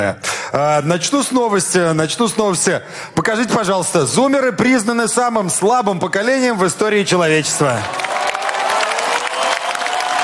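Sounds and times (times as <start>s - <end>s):
speech: 0.0s - 8.1s
stand-up comedy audience clapping: 7.4s - 10.2s.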